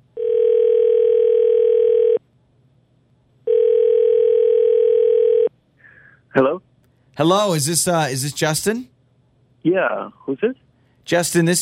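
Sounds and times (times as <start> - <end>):
telephone dial tone: 0.2 - 2.2, 3.5 - 5.5
speech: 7.2 - 8.9, 9.6 - 11.6.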